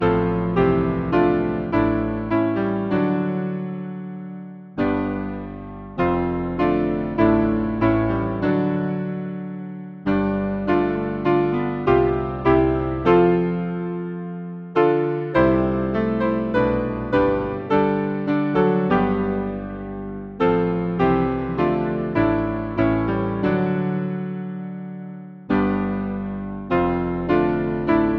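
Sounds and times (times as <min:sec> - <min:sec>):
hymn on piano: 0:00.0 - 0:28.1.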